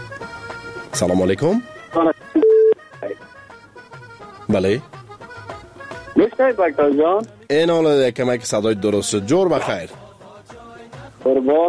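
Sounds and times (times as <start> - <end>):
speech: 1.0 - 2.1, 4.5 - 4.9, 6.4 - 10.0, 11.2 - 11.6
steady electronic telephone line tone as a caller connects: 2.0 - 3.2.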